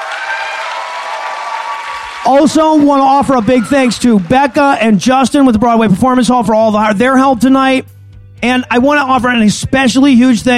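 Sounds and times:
live audience applause: 0:00.0 - 0:05.0
speech: 0:02.2 - 0:10.5.

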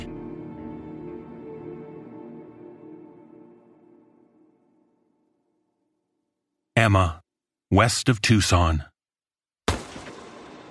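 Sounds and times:
speech: 0:06.8 - 0:08.9
gunshot with tail: 0:09.7 - 0:10.6.

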